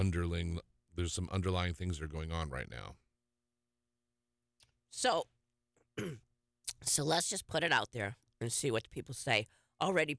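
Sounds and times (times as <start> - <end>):
speech: 0.0 - 3.0, 4.9 - 5.3, 6.0 - 6.2, 6.8 - 10.1
person clearing throat: 6.0 - 6.3
person coughing: 6.0 - 6.3.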